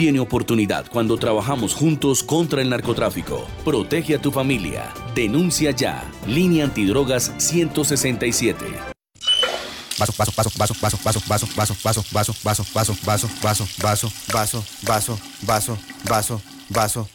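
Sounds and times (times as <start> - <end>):
speech: 0.0 - 8.9, 10.0 - 17.1
tap water running while washing a glass: 9.4 - 17.1.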